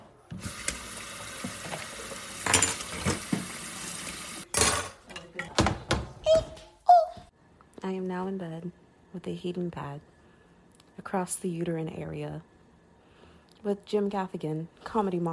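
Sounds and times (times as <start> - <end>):
running water splashing from a tap: 0.4 - 4.5
dishes and utensils clinking and clattering while washing dishes in a kitchen: 1.4 - 3.5, 4.5 - 5.8
speech: 7.9 - 10.1, 11.1 - 12.5, 13.6 - 15.3.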